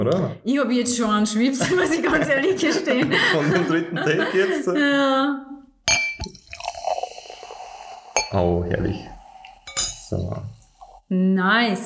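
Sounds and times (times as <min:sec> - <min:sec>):
speech: 0:00.0 - 0:05.5, 0:08.3 - 0:09.1, 0:10.1 - 0:11.8
laughter: 0:01.6 - 0:05.3
sharp glassy clink: 0:05.8 - 0:06.9, 0:08.2 - 0:10.7
sparkling wine Sekt pouring fizzing into a glass: 0:05.9 - 0:11.1.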